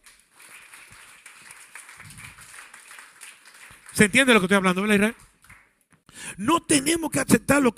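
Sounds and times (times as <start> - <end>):
crowd applauding: 0.0 - 5.8
speech: 4.0 - 5.2, 6.4 - 7.7.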